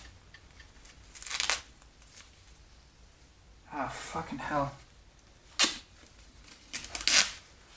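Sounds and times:
duct tape being cut for sticking onto a glove: 0.8s - 2.3s, 5.5s - 7.5s
speech: 3.8s - 4.8s.

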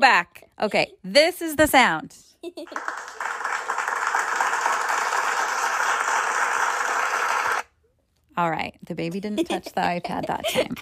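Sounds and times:
speech: 0.0s - 3.6s, 8.4s - 10.8s
many hands clapping in applause: 2.6s - 7.7s.

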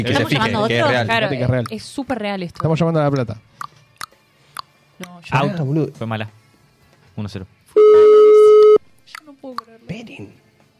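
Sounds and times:
speech: 0.0s - 3.7s, 5.0s - 6.4s, 7.2s - 8.0s, 9.4s - 10.4s
electronic interference tone on a telephone line during a call: 7.8s - 8.8s.

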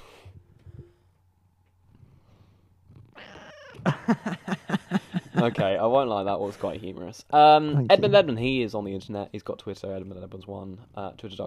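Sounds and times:
cat meowing: 3.1s - 3.9s
short loud clipped cat cries: 3.2s - 3.9s
laughter: 3.8s - 5.8s
speech: 4.1s - 4.8s, 5.4s - 11.4s.

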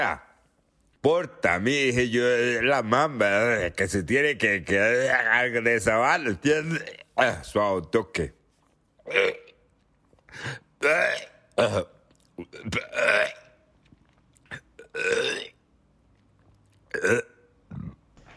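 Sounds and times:
speech: 0.0s - 0.3s, 1.0s - 8.4s, 9.1s - 9.4s, 10.3s - 13.4s, 15.0s - 15.5s, 17.0s - 17.3s
loud burps: 9.0s - 9.6s, 10.8s - 13.6s, 14.5s - 15.7s, 16.9s - 18.2s.

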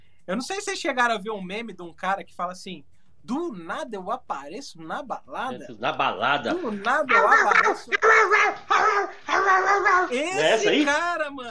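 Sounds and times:
speech: 0.3s - 11.4s
man imitating dog barking yelps: 6.5s - 10.9s.

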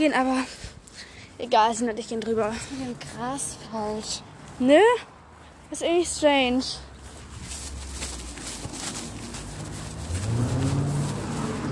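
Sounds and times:
speech: 0.0s - 0.6s, 1.4s - 5.1s, 5.7s - 6.9s
traffic noise from cars passing: 0.2s - 11.7s
car engine climbing in pitch: 9.0s - 11.7s.

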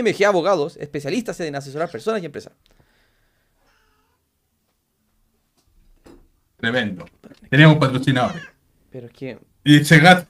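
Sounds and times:
speech: 0.0s - 2.8s, 6.6s - 10.2s
female cat meowing: 3.6s - 4.2s, 8.1s - 8.6s.

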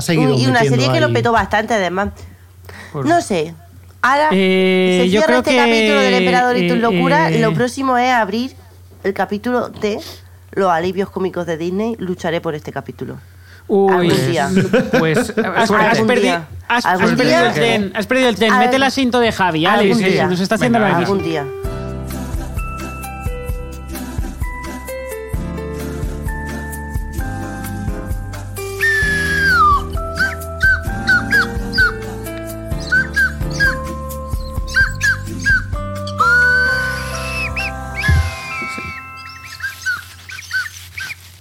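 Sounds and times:
speech: 0.0s - 21.8s
laughter: 14.1s - 16.1s
steady musical accompaniment: 20.6s - 39.8s
squeaky chicken whistle playing a tune in A minor: 28.6s - 32.1s, 32.7s - 41.3s.

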